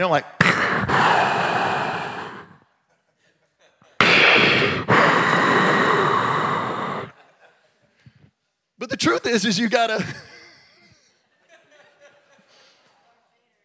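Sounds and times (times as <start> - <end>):
speech: 0.0 - 0.6, 9.3 - 10.3
voice imitating a breathing machine: 0.0 - 2.6, 4.0 - 7.2
laughter: 2.9 - 4.0, 7.1 - 8.0, 9.9 - 12.8.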